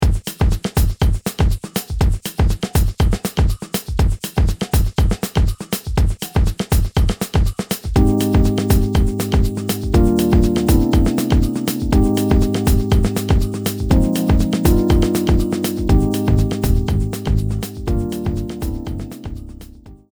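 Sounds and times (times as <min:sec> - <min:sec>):
afro groove music: 0:00.1 - 0:20.1.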